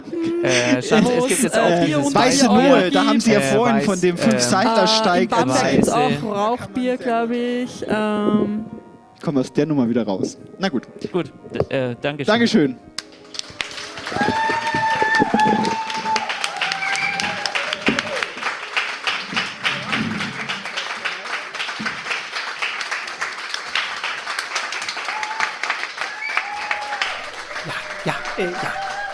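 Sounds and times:
laughter: 0.0s - 4.7s, 27.0s - 29.1s
speech: 0.2s - 12.9s
live show audience applauding: 13.0s - 29.1s
audience shouts and whoops: 14.1s - 18.3s, 25.1s - 29.1s.

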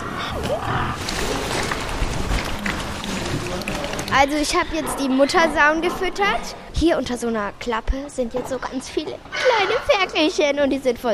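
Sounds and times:
many pigs oinking and grunting: 0.0s - 6.2s
speech: 4.1s - 11.1s.

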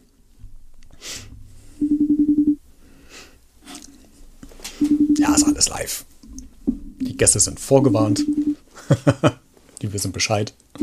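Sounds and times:
faint breathing: 0.9s - 2.0s, 2.7s - 5.0s
telephone ringback tone on an outgoing call: 1.8s - 2.6s, 4.8s - 5.6s, 7.9s - 8.6s
speech: 5.6s - 6.1s, 7.1s - 10.6s
laughter: 8.8s - 9.4s.

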